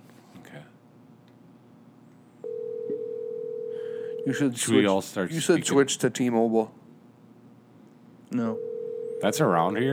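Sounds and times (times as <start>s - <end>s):
phone dial tone while redialing a dropped call: 2.4s - 4.4s, 8.6s - 9.4s
speech: 4.2s - 6.8s, 8.3s - 8.6s, 9.2s - 9.9s.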